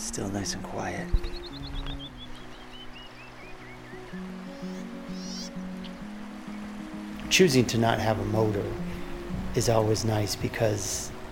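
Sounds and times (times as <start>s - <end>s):
speech: 0.2s - 1.4s, 7.3s - 8.8s, 9.6s - 11.1s
descending series of bird chirps: 0.9s - 6.7s
river water tumbling over a shallow riffle at the mouth of Indian Creek Canyon: 2.2s - 11.2s.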